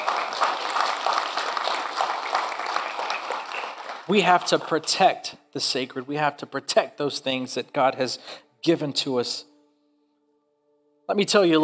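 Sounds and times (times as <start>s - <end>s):
audience applauding: 0.0s - 5.0s
speech: 4.1s - 9.5s, 11.1s - 11.6s.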